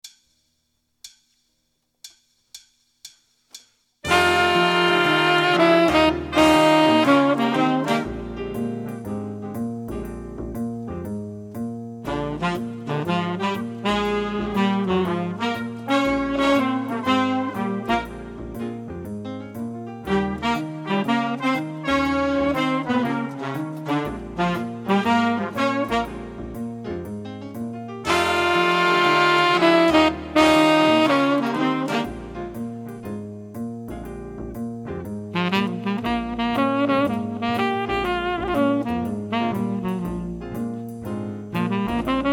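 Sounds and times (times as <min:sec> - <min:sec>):
blues tenor sax solo: 0:04.0 - 0:09.0, 0:12.0 - 0:18.9, 0:20.0 - 0:26.7, 0:28.0 - 0:32.7, 0:35.3 - 0:40.9, 0:41.5 - 0:42.3.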